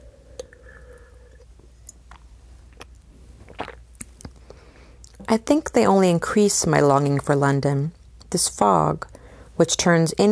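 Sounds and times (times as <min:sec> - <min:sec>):
person sipping a drink: 0:00.0 - 0:05.2
speech: 0:05.3 - 0:10.3.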